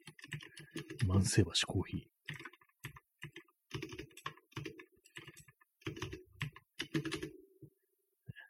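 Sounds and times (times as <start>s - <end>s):
computer keyboard typing: 0.0s - 1.2s, 2.2s - 7.4s
speech: 0.8s - 2.2s.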